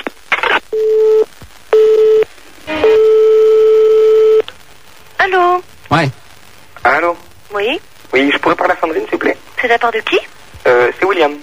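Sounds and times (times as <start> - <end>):
telephone line tone during a call back: 0.7 - 4.4
speech: 7.0 - 11.4.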